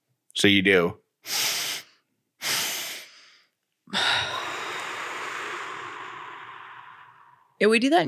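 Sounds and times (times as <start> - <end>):
speech: 0.4 - 1.4, 7.6 - 8.0
deep inhales through the nose: 1.2 - 7.5
long full exhale through the mouth: 1.3 - 7.6.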